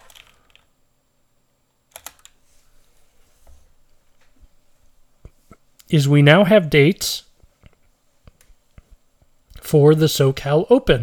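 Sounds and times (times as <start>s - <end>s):
keys clicking on a computer keyboard: 1.9s - 2.4s
speech: 5.9s - 7.3s, 9.7s - 11.0s.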